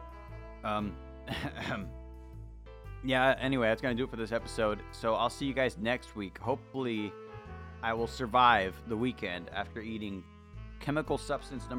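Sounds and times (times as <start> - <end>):
speech: 0.6 - 2.0, 3.0 - 7.2, 7.8 - 11.7
person coughing as though choking on food: 1.3 - 1.9
throat clearing: 1.3 - 1.9.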